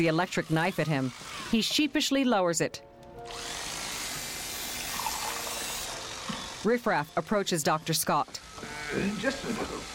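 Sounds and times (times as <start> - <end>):
speech: 0.0 - 3.5, 6.6 - 9.9
wine being poured into guests' wine glasses: 4.6 - 6.5.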